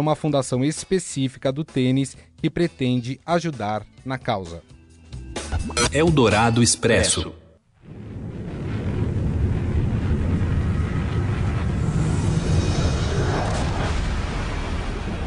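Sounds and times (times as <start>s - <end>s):
speech: 0.0s - 4.8s, 5.6s - 8.0s
meteor impact sound effect roaring rumble: 7.8s - 15.2s
faint hissing whooshes: 11.6s - 15.2s.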